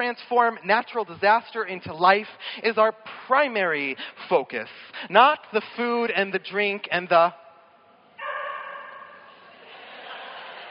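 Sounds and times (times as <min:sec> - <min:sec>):
speech: 0:00.0 - 0:07.4
dog barking: 0:08.2 - 0:09.5
laughter: 0:09.4 - 0:10.6.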